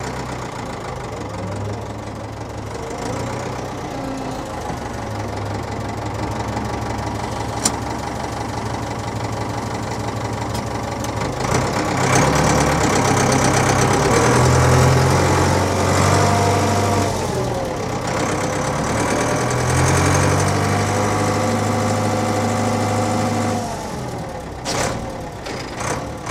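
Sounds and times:
diesel truck idling: 0.0 - 26.3.

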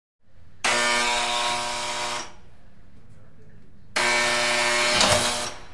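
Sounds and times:
apartment door buzzer: 0.6 - 2.4, 4.0 - 5.6.

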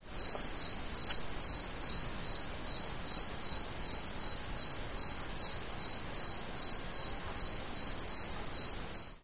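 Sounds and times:
crickets chirping: 0.0 - 9.2.

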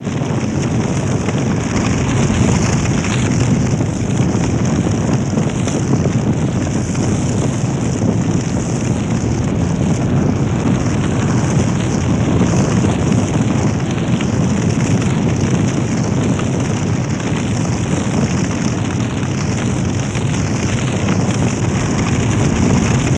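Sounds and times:
heavy fire burning: 0.0 - 23.1.

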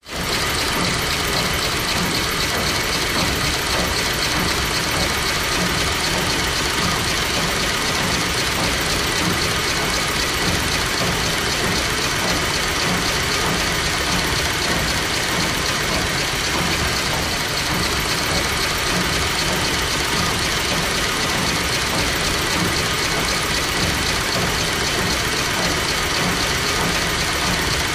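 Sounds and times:
industrial motor running: 0.0 - 27.9.

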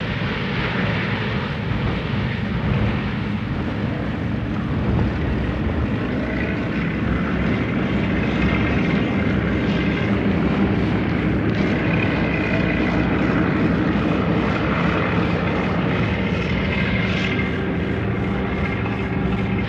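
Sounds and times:
B-29 Superfortress engines idling and revving on a field: 0.0 - 19.6.

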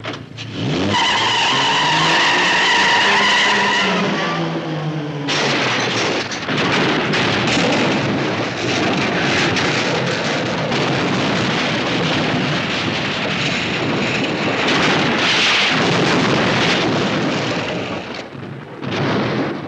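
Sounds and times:
car crash: 0.0 - 19.6
car tires peeling out: 0.4 - 6.1.

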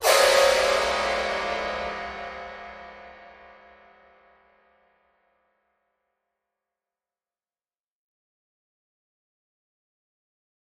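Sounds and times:
piano strings: 0.0 - 4.5.

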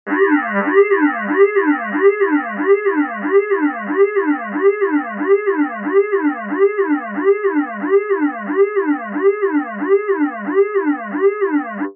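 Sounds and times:
security breach alarm: 0.1 - 11.9.

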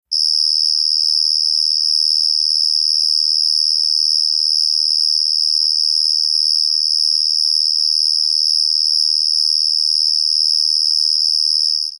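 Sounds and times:
cricket singing: 0.1 - 11.9.

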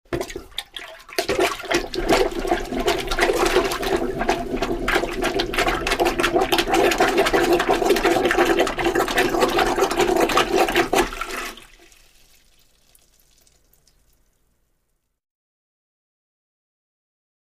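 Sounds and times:
toilet plunging: 0.1 - 11.9.

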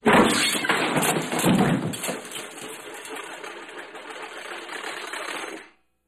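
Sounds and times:
large debris crash: 0.0 - 5.7.

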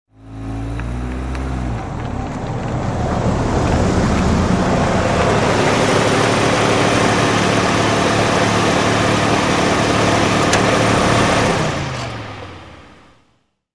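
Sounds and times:
sedan parking manoeuvre: 0.2 - 13.2.

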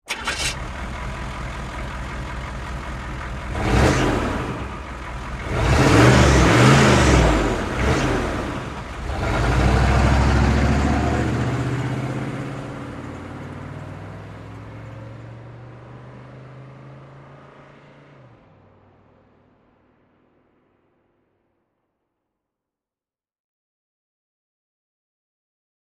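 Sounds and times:
Humvee engine slow start and rev: 0.0 - 18.5.

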